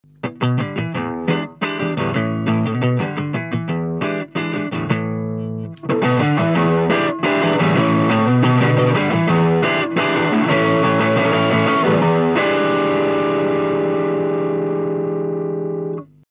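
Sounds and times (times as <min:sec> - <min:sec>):
overdrive effect: 0:00.0 - 0:16.2.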